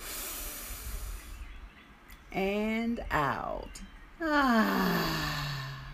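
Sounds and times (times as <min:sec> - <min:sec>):
deep breath in through the nose during a breathing exercise: 0:00.0 - 0:01.4
speech: 0:02.3 - 0:05.3.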